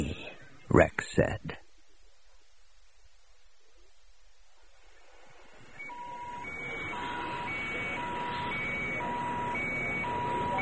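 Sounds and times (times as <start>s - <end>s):
speech: 0.7s - 1.6s
warbling all-clear sirens at spaceport open-air launch pads: 5.4s - 10.6s.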